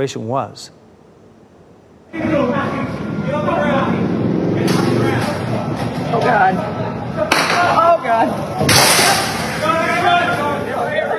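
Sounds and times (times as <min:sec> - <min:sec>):
speech: 0:00.0 - 0:00.8
voices: 0:02.1 - 0:11.1
gunshots captured on a low-quality phone recording: 0:08.6 - 0:09.7.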